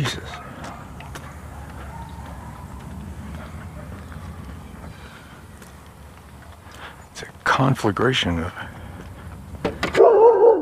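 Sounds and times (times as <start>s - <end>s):
dog barking behind a fence: 0.1s - 4.2s, 10.0s - 10.6s
speech: 7.6s - 8.6s.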